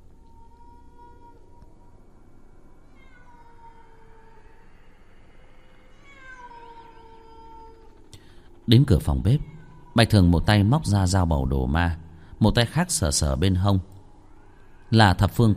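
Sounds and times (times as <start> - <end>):
stray cats yowling outside at night: 0.2 - 11.1
speech: 8.7 - 14.0, 14.9 - 15.5.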